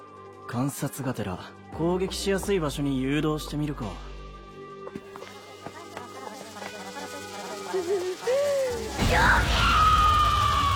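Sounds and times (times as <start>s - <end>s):
speech: 0.5s - 4.1s, 7.7s - 9.8s
rough noisy background: 4.7s - 10.7s
long high strained scream: 8.1s - 10.7s
person letting out short wavering cries: 8.2s - 10.7s.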